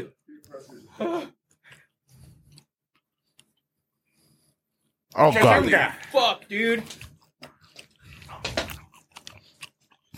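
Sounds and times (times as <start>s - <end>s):
speech: 0.0s - 1.4s, 5.2s - 7.0s
crunching and chewing food: 1.5s - 3.8s, 6.7s - 10.1s.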